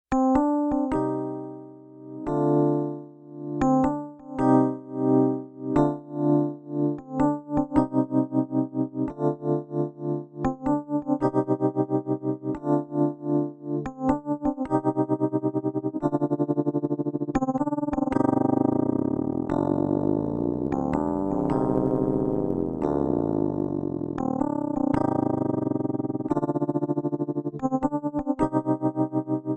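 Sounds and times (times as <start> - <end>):
piano panning: 0.1 - 29.5.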